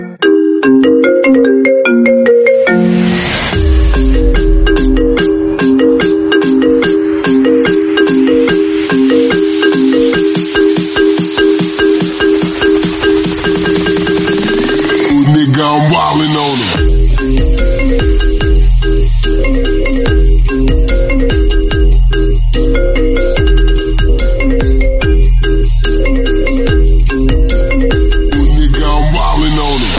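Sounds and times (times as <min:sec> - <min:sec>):
dance hall marimba remix: 0:00.0 - 0:29.9.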